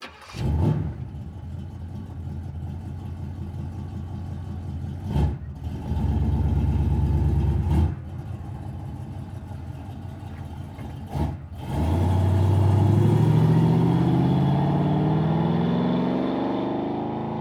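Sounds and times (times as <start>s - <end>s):
muscle car starting: 0.0s - 14.2s
muscle car reversing fast: 0.0s - 17.3s.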